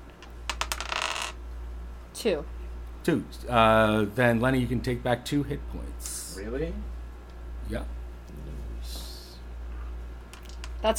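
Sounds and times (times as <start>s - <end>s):
low steady hum: 0.0s - 10.9s
six-sided die rolling on a table: 0.5s - 1.4s
speech: 2.2s - 7.0s, 7.7s - 8.5s.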